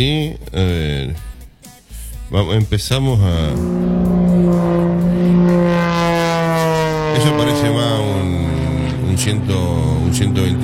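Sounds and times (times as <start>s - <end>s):
speech: 0.0s - 1.3s, 2.3s - 5.8s, 7.2s - 8.5s, 9.2s - 10.6s
airplane engine droning in flight: 3.1s - 10.6s.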